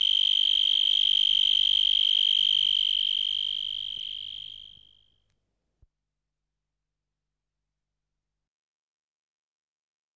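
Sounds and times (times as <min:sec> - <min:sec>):
insect buzzing: 0:00.0 - 0:04.8.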